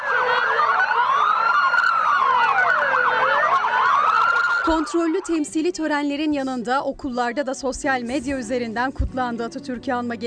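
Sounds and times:
police sirens from a motorcycle convoy wailing and yelping: 0:00.0 - 0:05.7
speech: 0:04.7 - 0:10.2.

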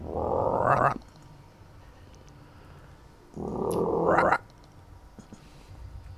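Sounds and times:
voice imitating the croaking call of a big bearded toad: 0:00.0 - 0:01.1, 0:03.3 - 0:04.5.

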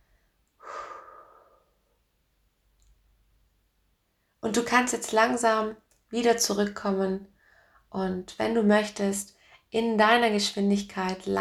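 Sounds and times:
slow full exhale through the mouth during a guided gratitude meditation: 0:00.6 - 0:01.9
speech: 0:04.4 - 0:07.3, 0:07.9 - 0:11.3.

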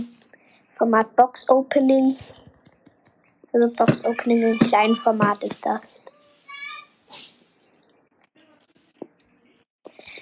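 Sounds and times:
speech: 0:00.8 - 0:02.5, 0:03.6 - 0:06.0
young boy shrieking with high-pitched squeals and cries: 0:06.5 - 0:07.0.

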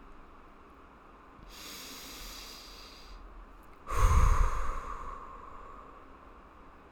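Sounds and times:
soft hiss: 0:00.0 - 0:06.9
deep airy breath in a calming breathing exercise: 0:01.5 - 0:03.2, 0:03.8 - 0:06.4.

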